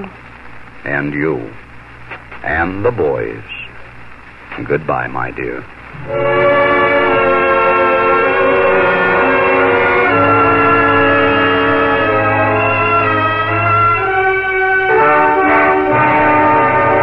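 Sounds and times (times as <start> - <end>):
speech: 0.0 - 0.2, 0.8 - 1.7, 2.4 - 3.6, 4.6 - 7.3
steady horn-like chord droning over the train rumble: 6.0 - 17.0.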